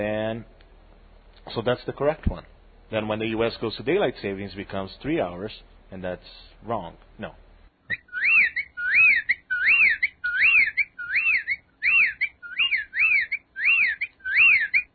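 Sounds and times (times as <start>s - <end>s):
speech: 0.0s - 0.6s, 1.5s - 8.0s
whippoorwill calling: 0.0s - 14.9s.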